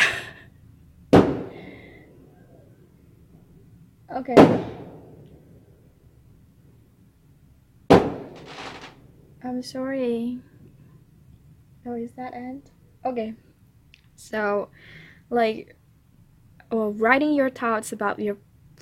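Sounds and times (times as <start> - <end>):
low hum: 0.0 - 18.7
speech: 4.1 - 4.8, 9.4 - 10.5, 11.9 - 13.4, 14.2 - 15.8, 16.7 - 18.7
fireworks bangs: 7.9 - 8.9.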